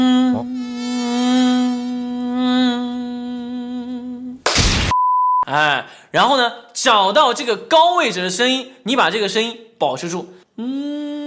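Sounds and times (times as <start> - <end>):
mosquito buzzing indoors in summer: 0.0 - 4.2
speech: 5.5 - 10.9.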